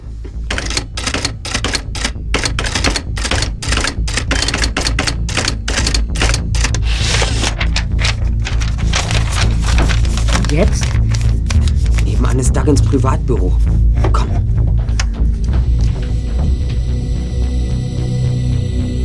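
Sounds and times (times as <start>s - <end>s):
low hum: 0.0s - 19.0s
typewriter keys clacking: 0.5s - 12.2s
speech: 10.6s - 10.8s, 12.4s - 14.4s.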